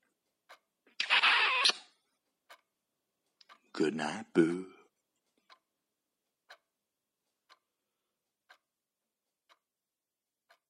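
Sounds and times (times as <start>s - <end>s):
squeaky kiss on the cheek: 0.9s - 2.0s
lip clicks: 0.9s - 2.6s
speech: 3.8s - 4.8s.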